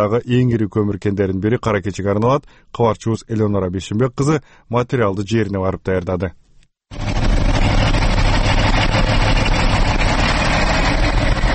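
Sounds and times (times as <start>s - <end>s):
speech: 0.0s - 7.0s
KAMAZ trucks idling while queuing at the Kara-Keche coal mine in Kyrgyzstan: 6.9s - 11.5s.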